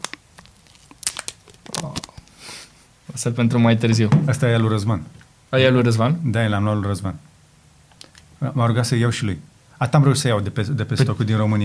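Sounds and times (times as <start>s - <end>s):
plastic foil wrapping on a boxed item crinkling against the microphone: 0.0s - 2.4s
speech: 3.2s - 7.3s, 8.4s - 11.6s.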